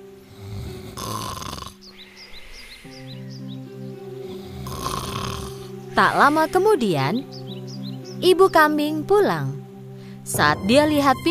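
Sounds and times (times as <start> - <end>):
birds chirping: 0.0 - 11.2
soft music: 0.0 - 11.2
wolf snoring while sleeping under a tree: 0.2 - 3.2, 4.3 - 6.7
speech: 6.0 - 7.3, 8.2 - 9.6, 10.3 - 11.2.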